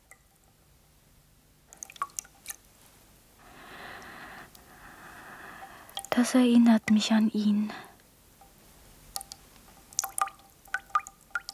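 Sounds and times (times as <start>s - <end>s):
hands splashing and dripping in a washbowl: 0.0s - 0.6s, 1.7s - 3.0s, 3.6s - 7.2s, 8.4s - 11.5s
speech: 6.2s - 7.9s.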